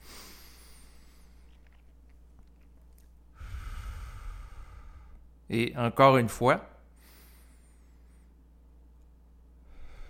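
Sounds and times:
person taking a slow deep conscious breath in and out: 0:00.0 - 0:01.4, 0:03.3 - 0:05.4, 0:06.9 - 0:08.5, 0:09.6 - 0:10.0
speech: 0:05.5 - 0:06.7.

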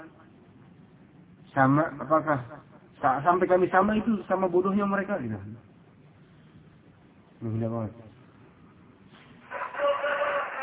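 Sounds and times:
speech: 0:01.5 - 0:05.7, 0:07.4 - 0:08.1
rooster crowing: 0:09.4 - 0:10.6.

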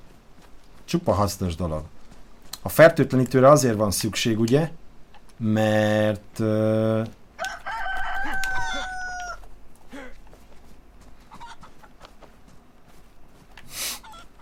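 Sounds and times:
speech: 0:00.9 - 0:02.0, 0:02.6 - 0:04.8, 0:05.4 - 0:07.2
loud drawn-out crow-like call: 0:07.3 - 0:10.1, 0:11.2 - 0:12.0, 0:14.0 - 0:14.3
video game chickens clucking during a chicken chase: 0:07.4 - 0:10.4, 0:11.1 - 0:12.6, 0:13.4 - 0:14.3.

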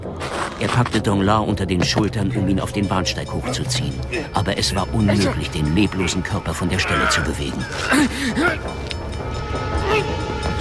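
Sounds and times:
speech: 0:00.6 - 0:08.9
wavering horn-like train whistle tones: 0:09.3 - 0:10.5.

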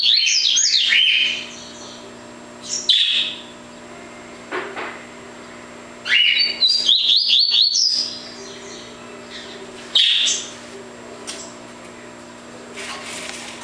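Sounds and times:
double-collared seedeater song: 0:00.0 - 0:02.0, 0:02.6 - 0:03.5, 0:06.0 - 0:10.5.

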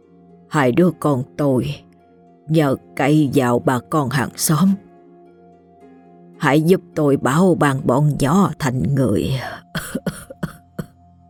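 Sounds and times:
speech: 0:00.5 - 0:01.9, 0:02.5 - 0:04.9, 0:06.4 - 0:10.2
ailing dying old man coughing while clutching his chest: 0:09.8 - 0:10.9.

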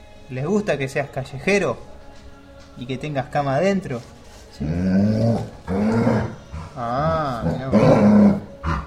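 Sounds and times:
speech: 0:00.3 - 0:01.9, 0:02.8 - 0:05.5
dog growling and grumbling: 0:04.6 - 0:08.8.

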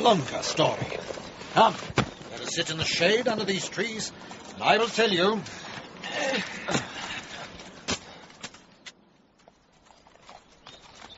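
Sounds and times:
horses' hooves clip-clopping: 0:00.0 - 0:06.0, 0:09.4 - 0:11.1
speech: 0:00.0 - 0:06.9.

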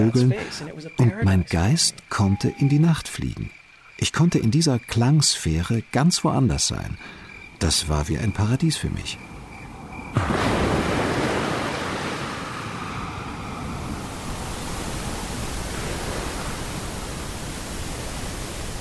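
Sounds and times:
speech: 0:00.0 - 0:09.3, 0:10.1 - 0:10.6
ocean waves rushing surf: 0:09.2 - 0:18.7.

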